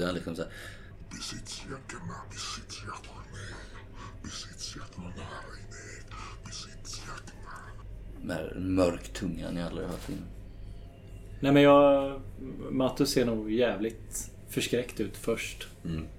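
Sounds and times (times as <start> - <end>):
speech: 0.0 - 5.6, 8.2 - 10.4, 11.4 - 16.1
low steady hum: 0.0 - 16.1
hoarse eerie whispering: 0.8 - 7.9.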